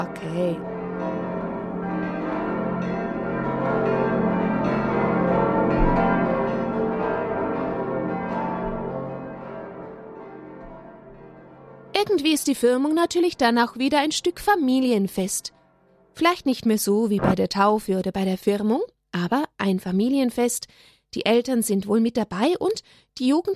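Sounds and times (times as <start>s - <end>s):
speech: 0.0s - 0.8s, 12.2s - 15.6s, 16.2s - 23.5s
church bells pealing for a festive confirmation service: 0.0s - 15.2s.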